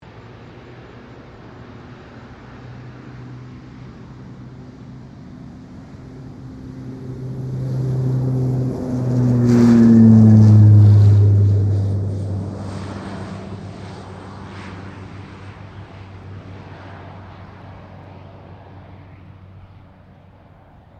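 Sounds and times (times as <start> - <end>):
King Air 350 airplane taking off: 0.0 - 20.9.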